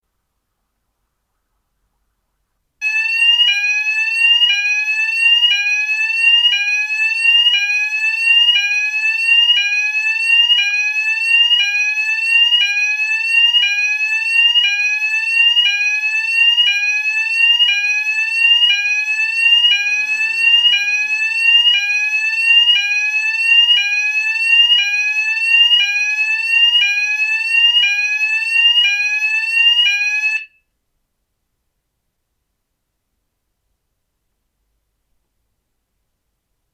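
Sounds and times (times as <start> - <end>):
smoke alarm: 2.8 - 30.7.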